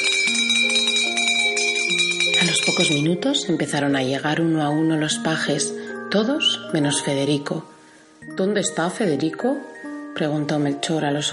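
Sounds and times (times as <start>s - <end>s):
bell in an entrance hall rung to summon pages: 0.0s - 3.6s
speech: 2.8s - 11.3s.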